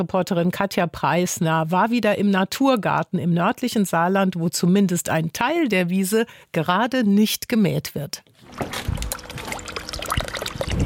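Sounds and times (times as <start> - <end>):
speech: 0.0 - 9.0
water splashing and trickling in a natural garden behind a house in St. Wendel: 8.4 - 10.8.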